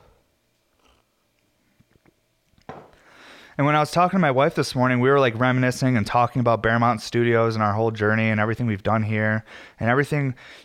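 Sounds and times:
person sipping coffee: 0.7s - 1.2s
speech: 3.6s - 10.6s.

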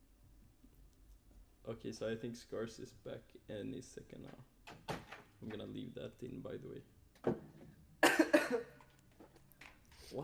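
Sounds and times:
speech: 1.7s - 4.6s, 5.4s - 7.5s, 8.5s - 8.7s
person coughing harshly: 8.0s - 8.8s.

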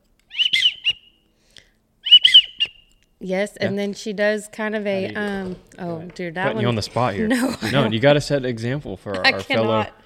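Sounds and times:
widgeon whistle blown on a duck call: 0.3s - 1.2s, 2.0s - 2.9s
speech: 3.2s - 10.0s
laughter: 7.3s - 8.2s.

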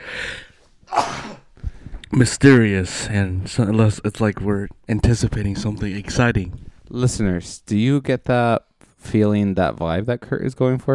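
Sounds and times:
breathy intake: 0.0s - 2.0s
person sneezing: 0.9s - 1.5s
speech: 2.2s - 10.9s.

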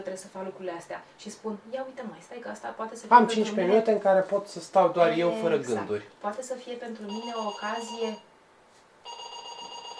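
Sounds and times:
speech: 0.0s - 8.3s
telephone ringing with electronic trill: 7.1s - 8.3s, 9.0s - 9.9s.

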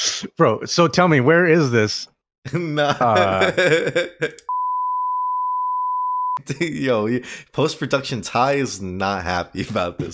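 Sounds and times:
speech: 0.2s - 4.5s, 6.4s - 10.1s
laughter: 2.8s - 4.4s
loud steady censor bleep: 4.5s - 6.4s.

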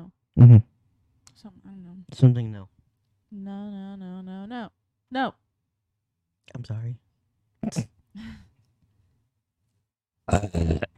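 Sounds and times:
speech: 0.4s - 0.7s, 1.4s - 5.4s, 6.5s - 7.0s, 7.6s - 8.5s, 10.3s - 10.9s
short guttural croaky burps and rough belch: 10.3s - 10.9s.

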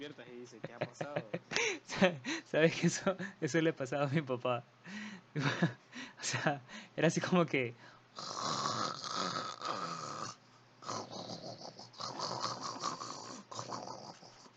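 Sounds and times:
speech: 0.0s - 8.5s
laughter: 0.6s - 2.1s
voice imitating loud snoring: 8.2s - 14.5s.

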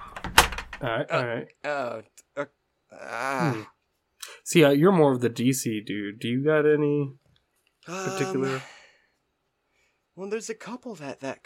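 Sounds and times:
door shutting: 0.0s - 0.9s
speech: 0.8s - 7.2s, 7.9s - 8.8s, 10.2s - 11.4s
person groaning or sighing: 2.9s - 3.8s, 7.9s - 8.8s.

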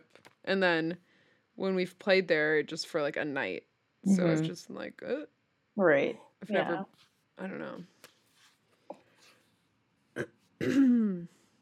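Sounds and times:
speech: 0.5s - 8.0s, 10.2s - 11.4s
person clearing throat with gravelly rasps: 10.2s - 11.4s.

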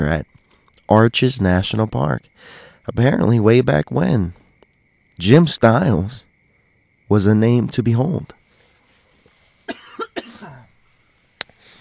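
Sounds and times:
speech: 0.0s - 0.3s, 0.9s - 4.4s, 5.2s - 6.3s, 7.1s - 8.4s
person coughing harshly: 9.7s - 10.7s.

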